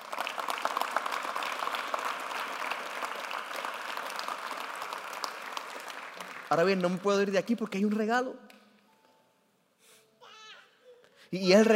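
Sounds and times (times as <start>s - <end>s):
congregation applauding: 0.0s - 8.2s
speech: 6.5s - 8.4s, 11.3s - 11.7s.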